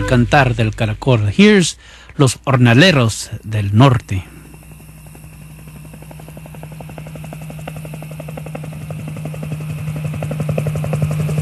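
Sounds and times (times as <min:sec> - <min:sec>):
speech: 0:00.1 - 0:04.3
helicopter flying overhead: 0:02.6 - 0:11.4.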